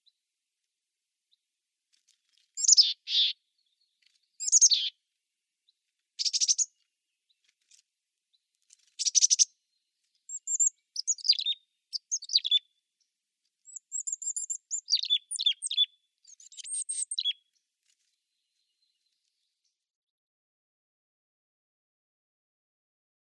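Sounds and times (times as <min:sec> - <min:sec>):
mountain chickadee calls: 0:02.6 - 0:03.4, 0:04.4 - 0:05.0, 0:06.2 - 0:06.7, 0:09.0 - 0:09.5, 0:10.3 - 0:12.6, 0:13.7 - 0:17.4.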